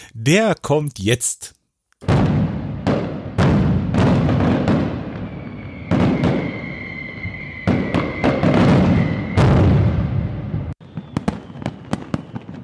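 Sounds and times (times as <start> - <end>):
speech: 0.1 - 2.1
fireworks display bangs and crackling bursts: 2.0 - 12.6
whistling rocket tone rising: 3.4 - 12.6.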